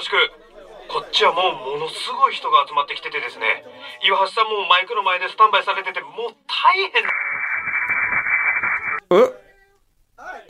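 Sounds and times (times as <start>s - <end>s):
speech: 0.1s - 7.2s, 9.1s - 9.4s
loud harsh static on a phone line: 6.6s - 9.0s.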